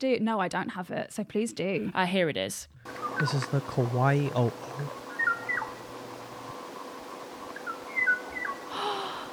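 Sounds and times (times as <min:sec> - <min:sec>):
speech: 0:00.0 - 0:05.0
Kauai oo bird call of clear whistled notes: 0:02.9 - 0:03.4, 0:05.1 - 0:05.8, 0:07.6 - 0:08.7.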